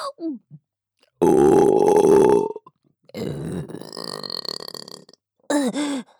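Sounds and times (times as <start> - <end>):
person burping: 1.2 - 5.9.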